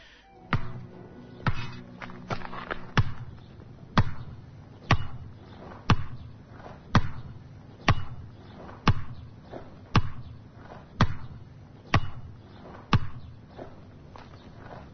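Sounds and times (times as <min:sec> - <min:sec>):
basketball bouncing on a concrete outdoor court: 0:00.5 - 0:14.3.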